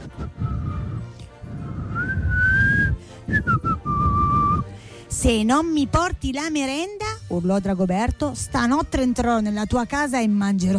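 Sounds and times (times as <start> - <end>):
person whistling a simple tune: 0.1 - 4.7
speech: 5.2 - 10.7.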